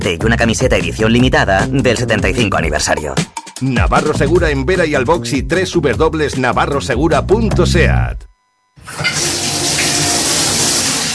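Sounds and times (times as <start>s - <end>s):
speech: 0.0s - 9.3s
water running from a tap: 8.8s - 11.1s.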